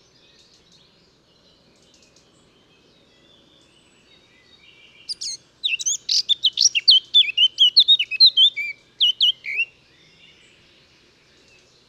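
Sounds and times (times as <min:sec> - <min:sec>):
Eurasian blackcap (Sylvia atricapilla) singing: 0:05.0 - 0:09.7.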